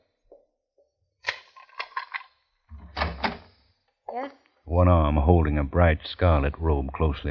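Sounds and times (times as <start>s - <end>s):
door scraping swing and thud: 2.7s - 3.5s
metallic clicks and rattles of door latch: 2.8s - 3.5s
speech: 4.2s - 7.2s.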